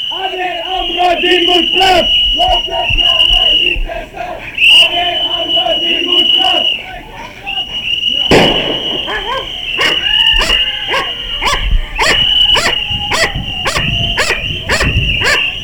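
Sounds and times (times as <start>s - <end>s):
noise: 0.0s - 15.6s
speech: 0.4s - 7.4s
dog barking aggressively: 9.1s - 15.5s.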